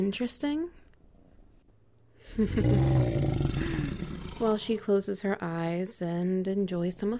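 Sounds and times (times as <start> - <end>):
speech: 0.0 - 0.8, 2.3 - 3.4, 4.4 - 7.1
deep rumbling cat-like roar of a female creature: 2.4 - 4.7.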